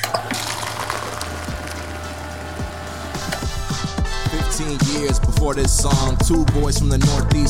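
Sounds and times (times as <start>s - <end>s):
soda pouring with fizzy crackle: 0.0s - 3.2s
low mechanical hum: 0.0s - 3.7s
speech: 4.6s - 7.4s.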